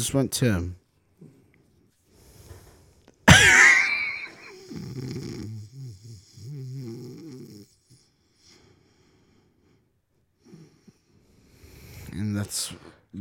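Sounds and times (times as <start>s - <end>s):
speech: 0.0s - 0.8s, 12.4s - 13.1s
person faking a snore with raspy snort and throaty breaths: 3.3s - 8.0s.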